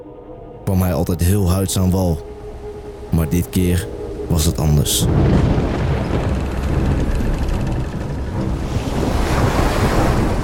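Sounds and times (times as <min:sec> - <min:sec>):
speech: 0:00.7 - 0:02.3, 0:03.1 - 0:06.4
rough stormy sea waves crashing: 0:02.9 - 0:10.4
strong wind roaring and buffeting the microphone: 0:05.0 - 0:10.4.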